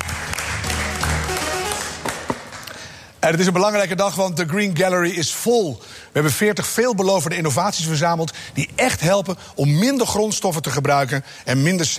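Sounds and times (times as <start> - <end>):
crowd applause: 0.0 - 2.9
speech: 3.2 - 11.9.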